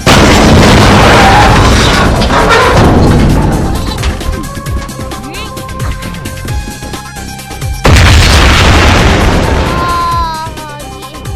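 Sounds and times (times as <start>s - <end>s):
explosion boom: 0.0s - 4.0s, 7.8s - 10.2s
crackling debris: 0.0s - 5.2s, 7.8s - 10.4s.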